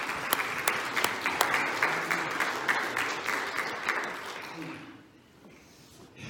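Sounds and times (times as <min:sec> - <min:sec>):
audience applause with many hands clapping: 0:00.0 - 0:04.9.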